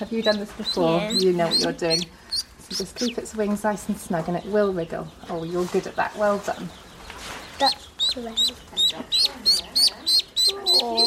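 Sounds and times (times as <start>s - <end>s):
speech: 0.0s - 9.2s, 10.7s - 11.0s
four-day-old baby bird chirping: 0.0s - 11.0s.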